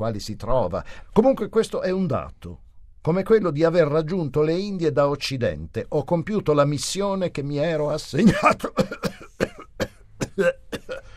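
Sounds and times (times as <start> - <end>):
speech: 0.0 - 11.0
persistent harsh cough from years of dampness: 8.2 - 11.1.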